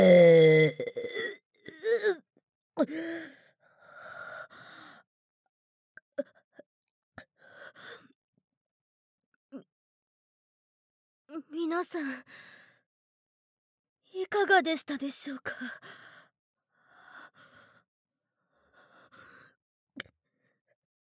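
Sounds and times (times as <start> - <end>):
person burping: 0.0 - 2.2
speech: 11.7 - 12.5, 14.2 - 16.0.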